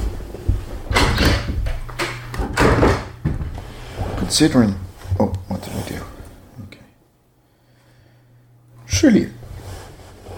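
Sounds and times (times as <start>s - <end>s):
door banging shut: 0.8s - 3.6s
speech: 4.3s - 5.4s.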